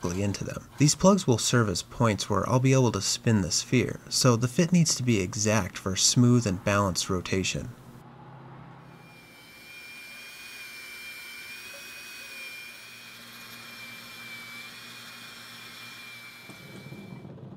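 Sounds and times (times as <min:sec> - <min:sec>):
speech: 0:00.0 - 0:07.8
small belt grinder polishing facets on a solid copper piece: 0:08.9 - 0:17.3.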